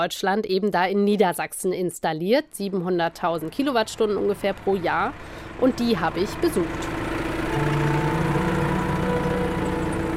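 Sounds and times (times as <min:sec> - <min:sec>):
speech: 0:00.0 - 0:07.0
tractor preparing the soil in a field under solar panels in Lower Saxony Germany: 0:02.6 - 0:10.1.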